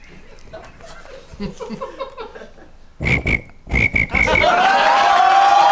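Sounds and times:
laughter: 0.2s - 2.8s, 4.1s - 5.6s
person imitating cricket chirping: 3.0s - 4.4s.

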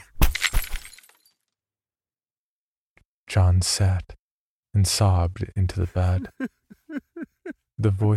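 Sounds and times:
scattering debris: 0.2s - 1.3s
screwdriver handle shattering against a wall: 0.2s - 1.3s
speech: 3.3s - 7.0s, 7.8s - 8.1s
laughter: 5.8s - 8.1s.

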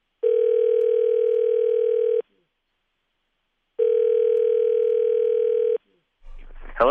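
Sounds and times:
telephone dial tone while placing a call: 0.2s - 2.2s, 3.8s - 5.8s.

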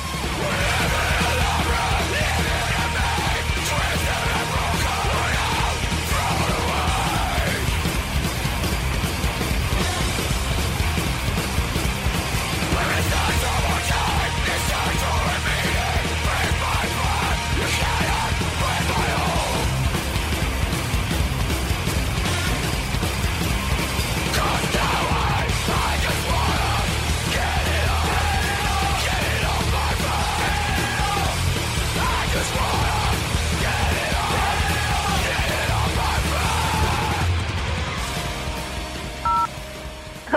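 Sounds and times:
harsh screamed vocals: 0.0s - 7.8s, 12.6s - 19.8s, 24.2s - 37.6s
constant wall of distorted sound: 0.0s - 40.3s
pounding drums: 0.0s - 40.3s.

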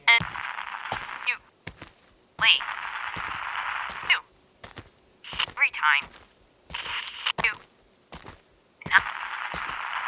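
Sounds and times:
walkie-talkie static: 0.0s - 1.5s, 2.4s - 4.3s, 5.3s - 7.7s, 8.8s - 10.0s
unintelligible crackle: 0.1s - 7.6s, 8.9s - 10.0s.

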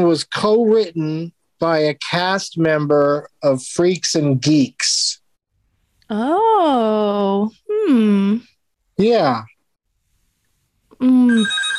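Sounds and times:
speech: 0.0s - 5.1s, 6.1s - 9.5s, 11.0s - 11.7s
telephone ringing sound effect: 11.3s - 11.7s.

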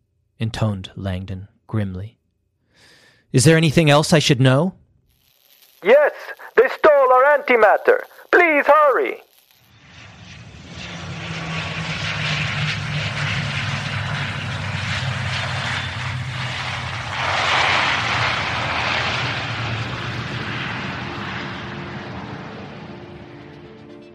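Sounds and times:
speech: 0.4s - 2.2s, 2.8s - 4.8s, 5.8s - 6.4s, 7.1s - 9.3s
airplane engine roaring: 5.9s - 24.1s.

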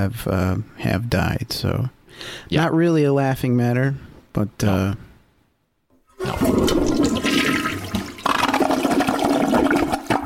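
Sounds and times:
speech: 0.0s - 5.1s, 6.2s - 6.8s
toilet flushing: 6.1s - 10.2s.

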